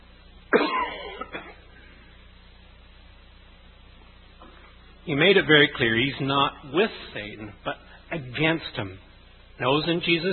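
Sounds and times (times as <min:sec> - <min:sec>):
harsh cough trailing into throat-clearing rasp: 0:00.5 - 0:01.7
speech: 0:05.1 - 0:10.3.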